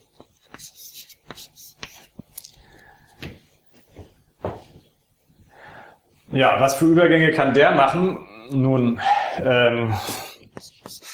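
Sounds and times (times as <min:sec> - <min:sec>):
writing on a board during a lecture: 0:00.1 - 0:02.3, 0:10.4 - 0:11.1
speech: 0:06.3 - 0:10.2.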